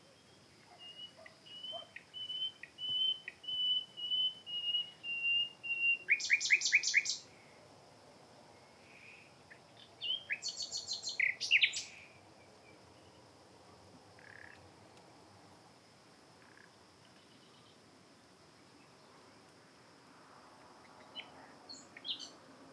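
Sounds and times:
Luscinia megarhynchos common nightingale singing: 0.0 - 7.3, 9.0 - 13.2, 21.0 - 22.4.

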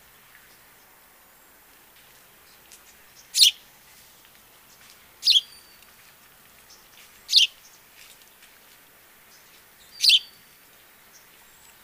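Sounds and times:
low hiss: 0.0 - 11.8
house sparrow chirping: 3.1 - 3.6, 4.7 - 5.8, 6.7 - 7.8, 9.3 - 10.5.

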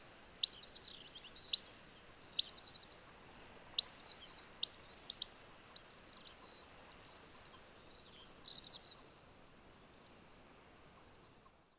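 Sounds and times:
background hiss: 0.0 - 11.7
European goldfinch Carduelis carduelis calls of bright chipping notes: 0.4 - 1.7, 2.4 - 3.0, 3.8 - 5.2.

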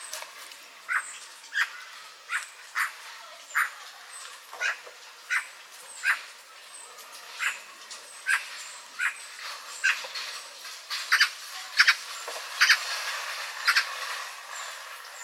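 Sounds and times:
Eurasian magpie Pica pica rasping calls: 0.9 - 3.8, 4.6 - 6.3, 8.3 - 9.2, 11.1 - 12.8, 13.6 - 14.0.

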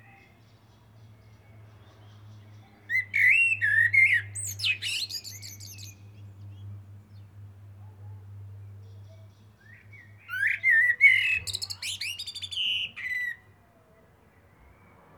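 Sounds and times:
Eurasian blackbird Turdus merula singing fluted phrase: 0.0 - 7.3, 8.8 - 15.0.

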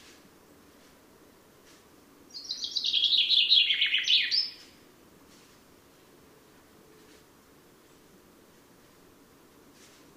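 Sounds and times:
common chaffinch Fringilla coelebs song fragment: 2.3 - 4.8.

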